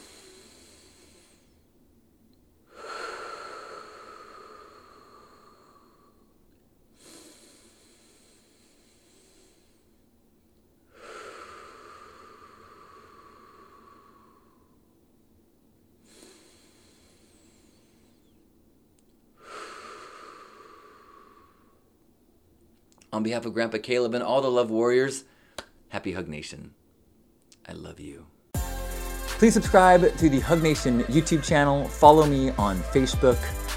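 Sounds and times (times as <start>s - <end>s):
slow deep breaths drawn in through the nose during a guided breathing exercise: 0.0s - 1.7s, 2.7s - 6.4s, 7.0s - 10.1s, 10.9s - 14.8s, 16.0s - 18.4s, 19.4s - 21.9s, 25.3s - 25.6s
speech: 23.2s - 25.3s, 26.0s - 26.8s, 27.7s - 28.4s, 29.4s - 33.6s.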